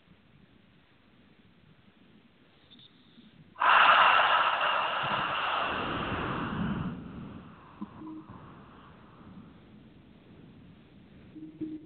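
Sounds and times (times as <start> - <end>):
deep abdominal breath drawn in: 3.6 - 7.8.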